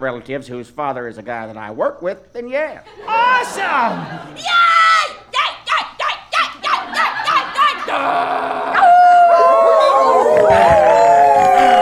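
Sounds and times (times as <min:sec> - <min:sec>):
speech: 0:00.0 - 0:05.2, 0:07.9 - 0:08.6
laughter: 0:02.8 - 0:04.7, 0:06.0 - 0:08.8, 0:09.4 - 0:11.8
chorus of wolves and coyotes howling: 0:08.0 - 0:11.8.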